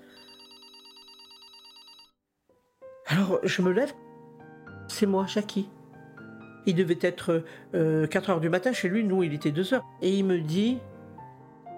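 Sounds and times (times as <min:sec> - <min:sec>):
landline telephone ringing with a trilling electronic tone: 0:00.0 - 0:02.2
speech: 0:03.1 - 0:04.0, 0:05.0 - 0:05.8, 0:06.6 - 0:10.9.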